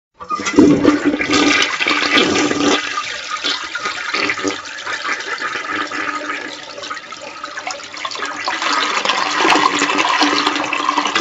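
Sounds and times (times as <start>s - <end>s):
toilet flush: 0.2s - 11.1s.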